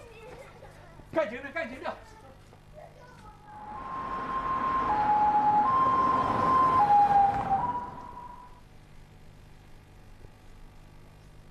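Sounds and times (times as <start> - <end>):
two-tone ambulance siren: 3.5 - 8.6.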